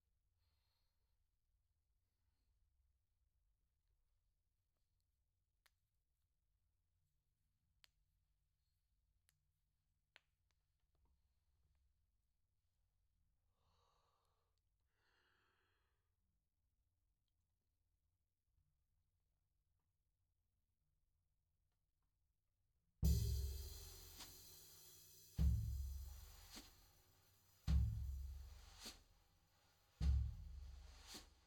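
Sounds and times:
floor tom: 23.0 - 29.1, 30.0 - 31.4.

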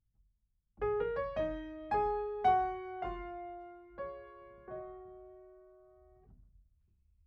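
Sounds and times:
piano: 0.8 - 6.4.

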